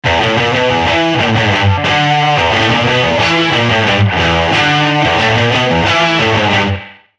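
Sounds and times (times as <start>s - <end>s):
electric guitar through a pawnshop combo guitar amp: 0.0s - 7.1s.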